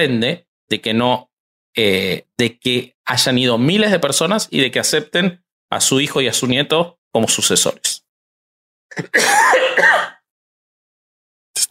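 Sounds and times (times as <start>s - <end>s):
speech: 0.0s - 8.0s, 9.0s - 9.9s
loud raspy throaty cough: 8.9s - 10.3s.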